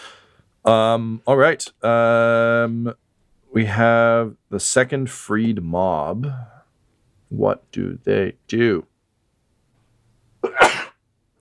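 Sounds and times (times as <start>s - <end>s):
speech: 0.6s - 6.6s, 7.3s - 8.9s
person sneezing: 10.4s - 11.0s.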